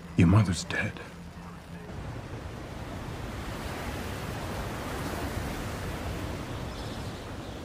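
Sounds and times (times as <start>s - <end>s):
speech: 0.2s - 1.1s
ocean surf rolling and washing: 1.9s - 7.6s.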